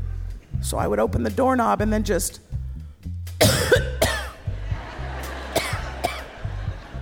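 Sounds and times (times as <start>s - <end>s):
speech: 0.6s - 2.5s
person coughing: 3.4s - 4.4s, 5.6s - 6.3s
laughter: 4.3s - 7.0s.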